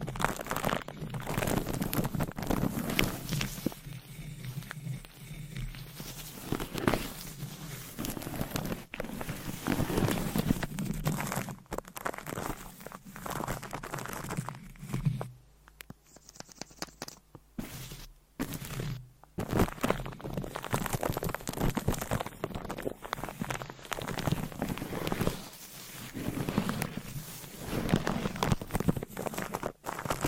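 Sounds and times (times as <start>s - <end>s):
microphone scratching and massaging: 0.0s - 15.4s, 17.6s - 30.2s
microphone brushing: 1.0s - 11.6s, 17.6s - 30.2s.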